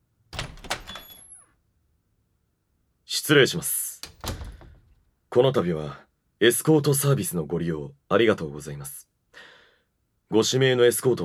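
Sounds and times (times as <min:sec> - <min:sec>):
speech: 0:03.3 - 0:03.8, 0:05.3 - 0:09.5, 0:10.3 - 0:11.2
door opening with a rush thunk squeak and scrape: 0:04.0 - 0:05.0.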